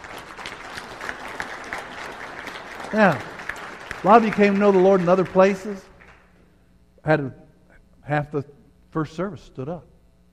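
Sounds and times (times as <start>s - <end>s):
audience applause: 0.0s - 6.3s
speech: 2.9s - 3.3s, 4.0s - 5.9s, 7.0s - 7.4s, 8.0s - 9.9s.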